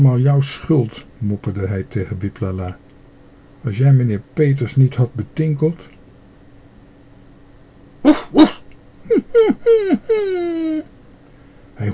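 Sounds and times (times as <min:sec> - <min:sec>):
speech: 0:00.0 - 0:02.8, 0:03.6 - 0:06.0, 0:08.0 - 0:10.9
animal whining with joy: 0:08.1 - 0:10.9.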